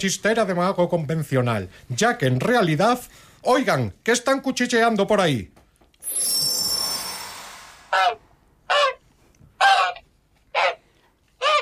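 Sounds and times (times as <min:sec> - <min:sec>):
speech: 0:00.0 - 0:06.5
rushing whoosh: 0:06.1 - 0:08.2
goose honking: 0:09.6 - 0:10.8, 0:11.4 - 0:11.6.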